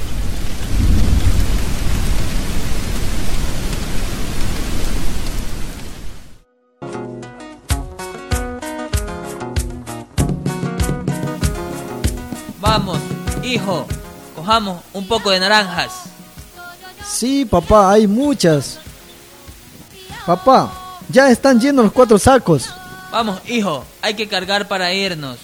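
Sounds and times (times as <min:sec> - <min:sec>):
deep thunder rumbling: 0:00.0 - 0:06.3
heavy steady rain: 0:00.0 - 0:06.4, 0:11.2 - 0:25.4
music: 0:06.4 - 0:24.7
speech: 0:13.6 - 0:16.0, 0:17.1 - 0:18.8, 0:20.2 - 0:25.4.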